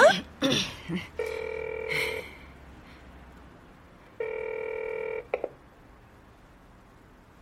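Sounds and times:
speech: 0:00.5 - 0:01.1
electronic telephone tones: 0:01.2 - 0:02.2, 0:04.2 - 0:05.5.

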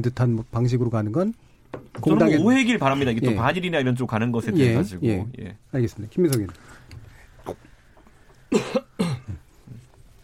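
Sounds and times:
speech: 0:00.0 - 0:06.8, 0:07.4 - 0:07.6, 0:08.5 - 0:08.8
person coughing from choking: 0:08.5 - 0:09.5
throat clearing: 0:08.5 - 0:09.8.

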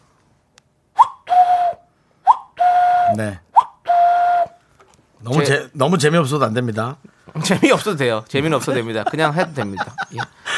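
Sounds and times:
person whistling an imitation cuckoo call: 0:01.0 - 0:04.6
speech: 0:03.1 - 0:03.5, 0:05.3 - 0:10.5
laughter: 0:07.3 - 0:10.5.

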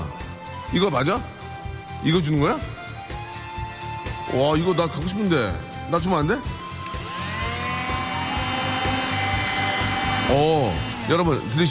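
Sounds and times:
speech: 0:00.7 - 0:01.4, 0:02.0 - 0:02.8, 0:04.3 - 0:06.6, 0:10.3 - 0:11.7
high-speed electric motor whirring: 0:06.7 - 0:11.7.

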